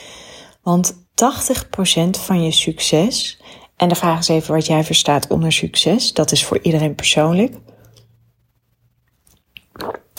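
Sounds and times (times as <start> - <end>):
speech: 0.6 - 7.7
person slurping hot tea: 9.0 - 10.1
swallowing: 9.2 - 10.1.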